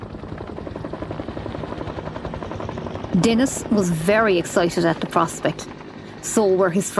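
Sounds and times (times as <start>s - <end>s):
helicopter rotor blades chopping overhead: 0.0s - 6.9s
speech: 3.2s - 6.9s.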